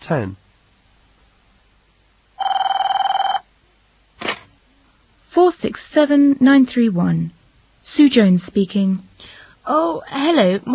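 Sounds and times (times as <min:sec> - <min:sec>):
speech: 0:00.0 - 0:00.4, 0:05.6 - 0:10.7
telephone ringing with rapid electronic trilling: 0:02.4 - 0:03.5.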